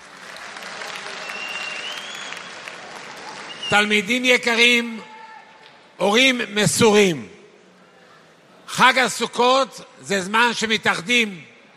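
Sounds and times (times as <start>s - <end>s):
audience of students and parents applauding at a school holiday gathering: 0.0s - 3.9s
speech: 3.7s - 5.1s, 6.0s - 7.3s, 8.7s - 11.5s.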